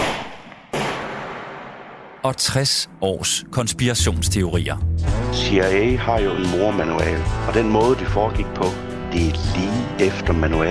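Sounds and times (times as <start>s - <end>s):
sharp gunshots: 0.0s - 2.2s
speech: 2.2s - 10.7s.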